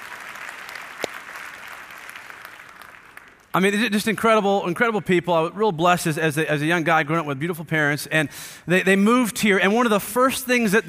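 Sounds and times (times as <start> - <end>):
sizable audience clapping: 0.0 - 3.6
speech: 3.6 - 10.8.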